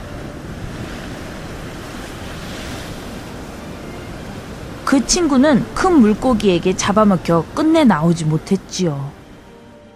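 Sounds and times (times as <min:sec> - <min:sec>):
gusts of wind across the microphone: 0:00.0 - 0:06.9
ocean waves churning and swirling: 0:00.0 - 0:09.9
speech: 0:04.9 - 0:09.2.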